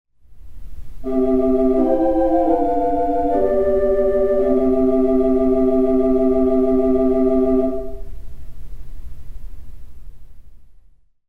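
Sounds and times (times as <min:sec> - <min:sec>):
theatre organ playing the Tibia Clausa stop: 0:01.0 - 0:08.0.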